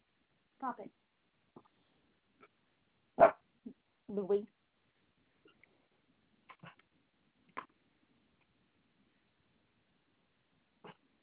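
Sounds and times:
speech: 0.6 - 1.0, 4.1 - 4.6
dog barking: 3.2 - 3.4.

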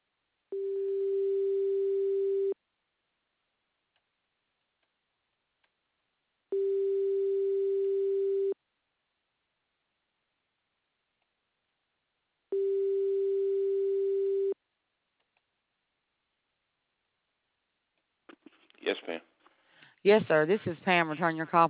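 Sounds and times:
phone line ringback tone while a call connects: 0.5 - 2.6, 6.5 - 8.6, 12.5 - 14.6
speech: 19.0 - 19.3, 20.0 - 21.6.

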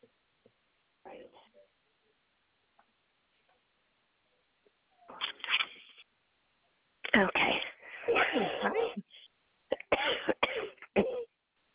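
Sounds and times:
person coughing in a harsh fit: 8.0 - 9.1, 9.7 - 11.3.

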